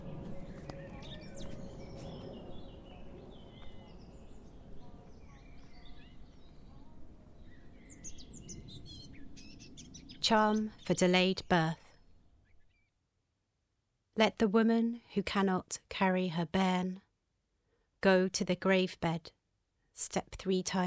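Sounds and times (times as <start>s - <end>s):
several birds chirping and trilling in a calm woodland: 0.0s - 13.0s
steady low woodland ambience: 0.0s - 20.8s
speech: 10.3s - 11.8s, 14.2s - 17.0s, 18.0s - 19.4s, 20.0s - 20.8s.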